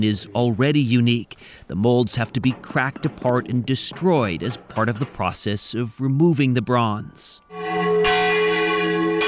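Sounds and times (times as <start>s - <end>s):
speech: 0.0s - 7.8s
church bells ringing in a town: 6.2s - 9.2s.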